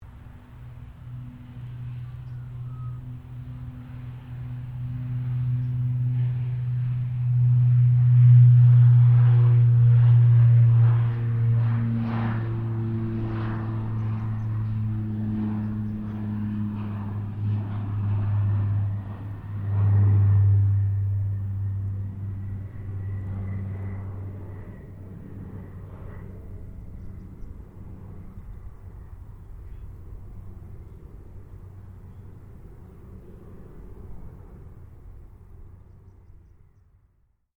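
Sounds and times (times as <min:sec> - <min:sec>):
distant 2007 King Air 350 taking off: 0:00.0 - 0:37.3.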